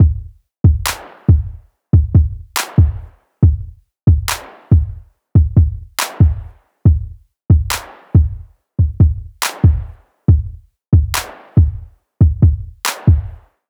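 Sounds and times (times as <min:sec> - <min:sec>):
kick drum: 0:00.0 - 0:13.5.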